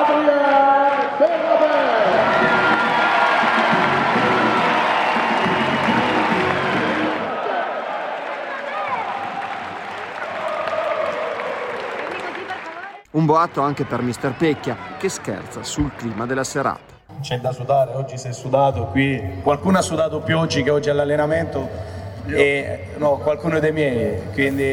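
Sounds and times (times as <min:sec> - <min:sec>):
large crowd clapping: 0:00.0 - 0:17.0
large crowd shouts and whistles: 0:01.0 - 0:11.3, 0:13.4 - 0:17.0
speech: 0:13.3 - 0:24.7.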